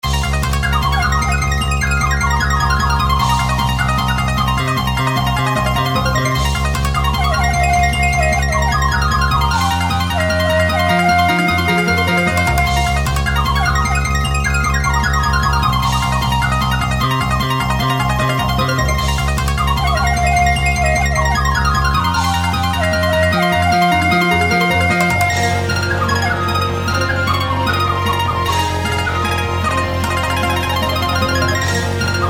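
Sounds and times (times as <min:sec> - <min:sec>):
koto: 0:00.0 - 0:32.2
shamisen: 0:00.1 - 0:32.2
shakuhachi flute: 0:07.0 - 0:14.7, 0:19.5 - 0:32.2.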